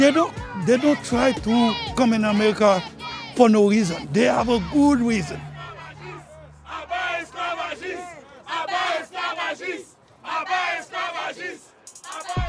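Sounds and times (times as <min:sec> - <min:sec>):
activist's loud voice through a bullhorn: 0:00.0 - 0:06.5
rally crowd chanting in call-and-response: 0:00.0 - 0:12.4
speech: 0:00.1 - 0:05.5.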